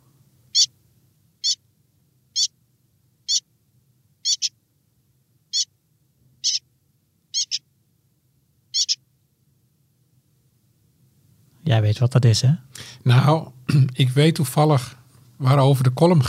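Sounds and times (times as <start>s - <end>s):
faint low hum: 0.0s - 16.2s
young common whitethroat giving short high scratchy calls: 0.5s - 0.8s, 1.4s - 1.6s, 2.3s - 2.6s, 3.2s - 3.5s, 4.2s - 4.6s, 5.5s - 5.8s, 6.4s - 6.7s, 7.3s - 7.7s, 8.7s - 9.0s
speech: 11.7s - 16.2s.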